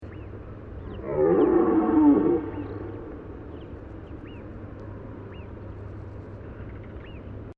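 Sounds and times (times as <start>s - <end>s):
faint low background rumble: 0.0s - 7.5s
red deer rutting bellow: 1.0s - 3.3s.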